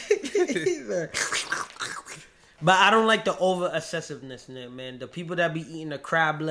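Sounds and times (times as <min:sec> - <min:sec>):
speech: 0:00.4 - 0:01.4, 0:02.6 - 0:06.4
voice imitating noodle slurping: 0:01.0 - 0:02.4.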